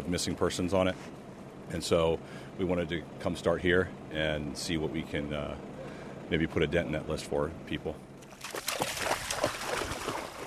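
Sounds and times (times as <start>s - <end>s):
speech: 0.1s - 5.7s, 6.3s - 8.1s
dog paddling and splashing in shallow floodwater: 8.3s - 10.4s.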